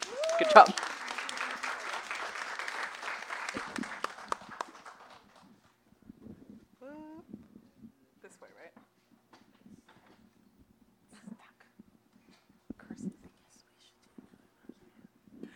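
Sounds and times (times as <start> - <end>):
audience member whooping: 0.0 - 0.7
audience applause: 0.0 - 5.7
speech: 0.4 - 0.9.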